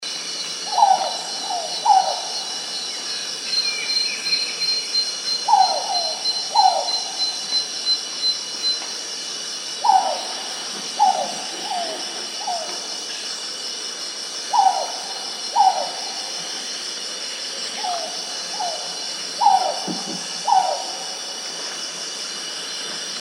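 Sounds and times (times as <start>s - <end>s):
jungle hawk owl: 0.6s - 2.6s, 5.4s - 7.6s, 9.8s - 12.9s, 14.5s - 16.8s, 17.7s - 21.4s.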